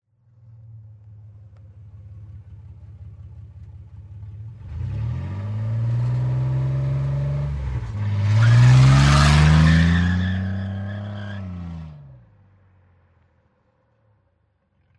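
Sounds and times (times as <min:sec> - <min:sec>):
car driving: 0:00.3 - 0:13.0
car tires squealing: 0:07.9 - 0:11.8.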